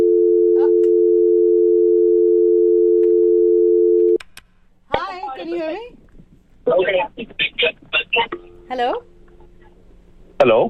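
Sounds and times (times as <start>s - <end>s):
telephone tone after a dropped call: 0.0s - 4.2s
speech: 6.7s - 9.1s, 10.4s - 10.6s.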